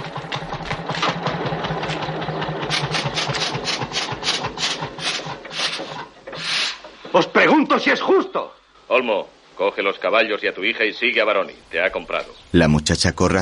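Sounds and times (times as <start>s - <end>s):
tractor engine idling and switching off: 0.0s - 7.2s
speech: 7.1s - 13.4s.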